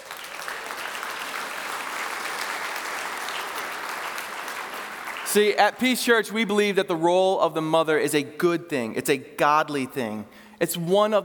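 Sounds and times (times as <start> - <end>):
crowd applauding in a church: 0.0 - 5.8
speech: 5.3 - 11.2.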